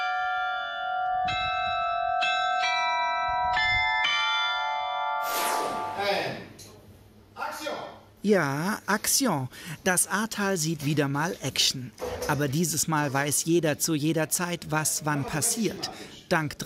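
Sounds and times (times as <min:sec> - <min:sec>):
carillon tower bells playing a tune: 0:00.0 - 0:06.3
speech: 0:08.2 - 0:16.6.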